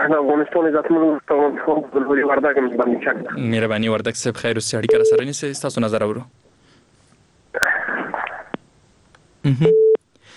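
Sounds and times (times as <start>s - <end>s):
speech: 0.0s - 6.4s, 9.4s - 9.8s
telephone busy signal after a caller's line drops during a phone-in: 9.6s - 10.0s.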